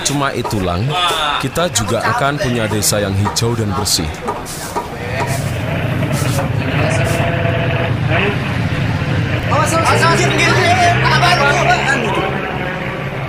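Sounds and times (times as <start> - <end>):
indistinct voices and chatter: 0.0 - 12.6
street din: 0.0 - 13.2
speech: 0.1 - 4.8, 9.9 - 11.8
motorbike engine roaring past in a village: 5.0 - 13.2.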